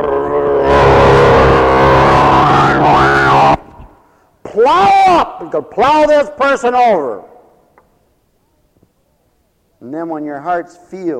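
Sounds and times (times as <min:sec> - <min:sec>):
tractor engine revving: 0:00.4 - 0:03.4
speech: 0:04.6 - 0:07.3, 0:09.8 - 0:11.1.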